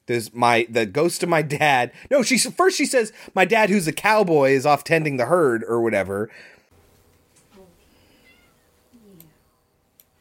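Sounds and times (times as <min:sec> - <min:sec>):
speech: 0:00.1 - 0:06.6
cat meowing: 0:08.2 - 0:08.7.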